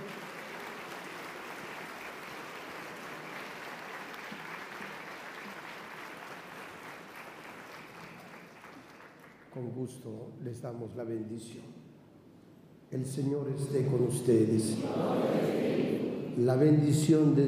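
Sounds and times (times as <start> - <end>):
large audience applauding: 0.0 - 9.6
speech: 9.6 - 11.8, 12.9 - 17.4.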